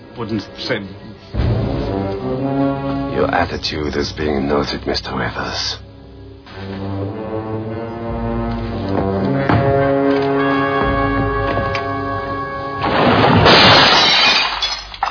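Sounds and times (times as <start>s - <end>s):
speech: 0.2s - 5.8s
sustained droning tone: 1.4s - 13.0s
loud crash of glass shattering: 12.8s - 15.0s.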